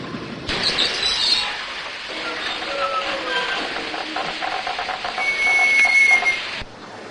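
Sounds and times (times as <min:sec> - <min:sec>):
train carriages rumbling and hissing pulling away from a station: 0:00.0 - 0:06.8
thin high whistle-like tone: 0:05.2 - 0:06.5.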